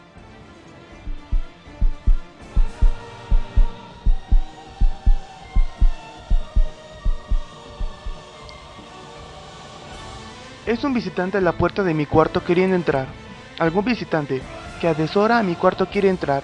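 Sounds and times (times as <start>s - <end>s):
heartbeat thumping: 1.1s - 8.2s
speech: 10.7s - 16.4s.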